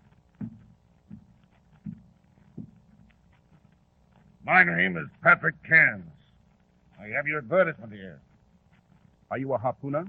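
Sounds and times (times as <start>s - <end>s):
heavy footsteps climbing a staircase: 0.0s - 4.4s
speech: 4.5s - 6.2s, 7.0s - 8.3s, 9.3s - 10.0s.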